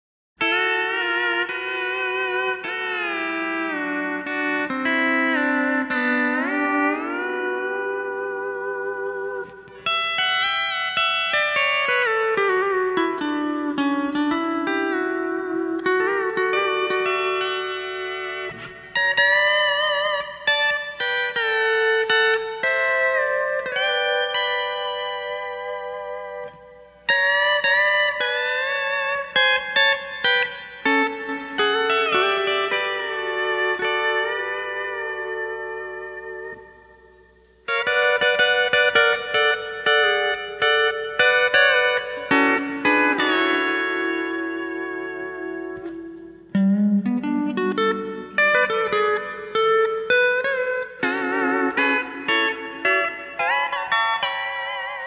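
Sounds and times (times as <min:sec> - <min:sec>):
stereo steel guitar: 0:00.4 - 0:55.0.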